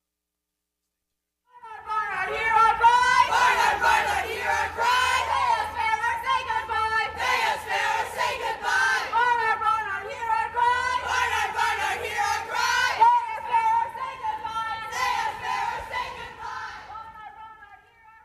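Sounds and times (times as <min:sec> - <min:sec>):
protesters chanting in unison at a union rally outside a college hall: 0:02.1 - 0:09.5, 0:10.4 - 0:17.2.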